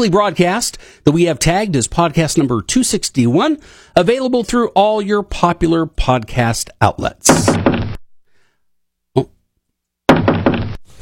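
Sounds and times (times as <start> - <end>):
speech: 0.0 - 7.7
single dull knock on a door: 10.1 - 10.8.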